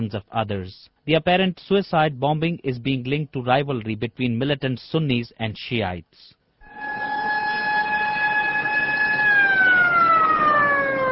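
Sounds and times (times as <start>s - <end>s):
speech: 0.0s - 6.4s
ambulance siren wailing at a bomb scene: 6.6s - 11.1s.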